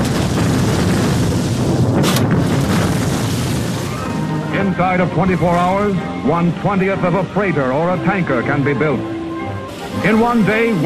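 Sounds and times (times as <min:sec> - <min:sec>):
dynamite explosions levelling ground near the German capital: 0:00.0 - 0:05.6
speech: 0:04.7 - 0:09.2, 0:10.0 - 0:10.8.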